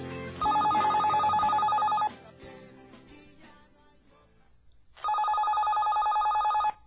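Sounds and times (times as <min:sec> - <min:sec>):
telephone ringing with rapid trilling electronic ring: 0:00.4 - 0:02.1, 0:05.0 - 0:06.8.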